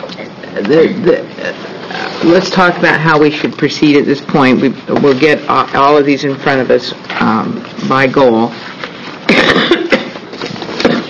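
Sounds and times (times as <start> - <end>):
speech: 0.2 - 8.7
person coughing harshly: 9.3 - 10.2, 10.8 - 11.0.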